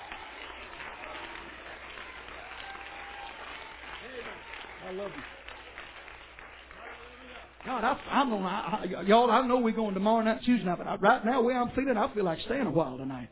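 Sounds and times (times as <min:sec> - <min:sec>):
audience clapping: 0:00.0 - 0:10.2
speech: 0:04.9 - 0:05.4, 0:07.6 - 0:13.3.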